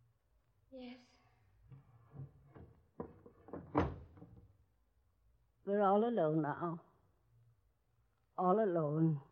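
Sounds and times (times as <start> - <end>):
speech: 0.7 - 1.2, 5.7 - 6.9, 8.4 - 9.3
wooden door shut and bolted: 1.7 - 4.5.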